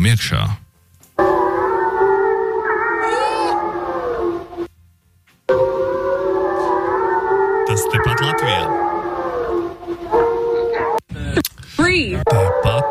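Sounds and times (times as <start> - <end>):
speech: 0.0 - 0.6
wolves howling: 1.2 - 4.7, 5.5 - 11.0, 12.2 - 12.8.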